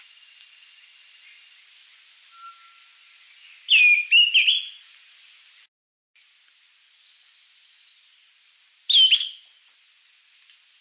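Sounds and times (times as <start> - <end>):
Greenish schiffornis song of slurred whistled notes: 2.3 - 4.8, 8.9 - 10.1.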